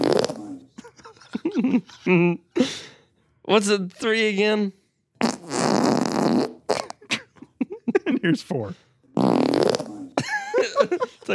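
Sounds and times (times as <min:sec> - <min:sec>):
string of buzzy fart noises: 0:00.0 - 0:00.8, 0:05.2 - 0:07.3, 0:09.2 - 0:10.3
laughter: 0:00.6 - 0:02.8, 0:06.9 - 0:08.7, 0:10.2 - 0:11.3
speech: 0:01.6 - 0:02.8, 0:03.5 - 0:04.8, 0:08.2 - 0:09.4, 0:10.9 - 0:11.3.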